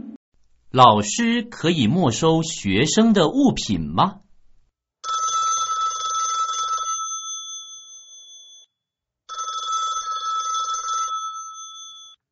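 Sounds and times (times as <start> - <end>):
speech: 0.7 - 4.3
telephone ringing with an electronic trill: 5.1 - 8.7, 9.3 - 12.2.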